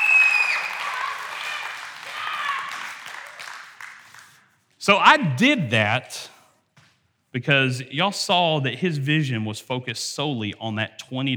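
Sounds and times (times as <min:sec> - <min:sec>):
audience applauding: 0:00.0 - 0:05.2
speech: 0:04.8 - 0:06.4, 0:07.4 - 0:11.3.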